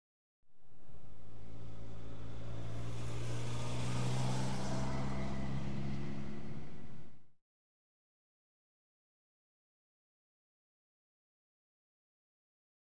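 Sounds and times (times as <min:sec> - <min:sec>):
vehicle driving on a road: 0:00.5 - 0:07.4.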